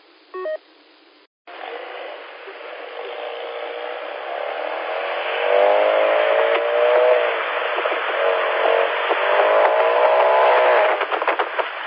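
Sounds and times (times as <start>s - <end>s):
short beep: 0.3s - 0.6s
buzzy raspy modified car exhaust revving: 1.5s - 11.8s.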